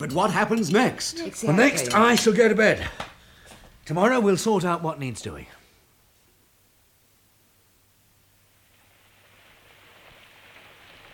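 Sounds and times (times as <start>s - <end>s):
speech: 0.0s - 3.1s, 3.9s - 5.6s
steady rain falling: 7.8s - 11.1s.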